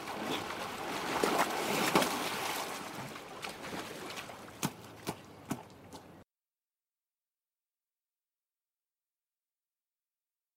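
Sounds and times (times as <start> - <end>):
person splashing while climbing out of water: 0.0 - 6.1.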